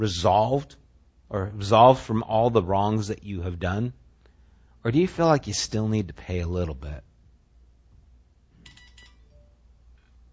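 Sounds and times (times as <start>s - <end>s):
speech: 0.0s - 4.0s, 4.8s - 7.1s
low hum: 0.0s - 10.3s
mobile phone ringtone with bright chirpy electronic tones: 8.6s - 9.5s.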